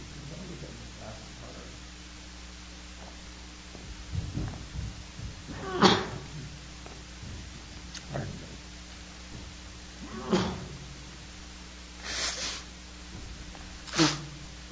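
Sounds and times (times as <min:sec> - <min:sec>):
low hum: 0:00.0 - 0:14.7
person sneezing: 0:12.0 - 0:12.7, 0:13.8 - 0:14.4.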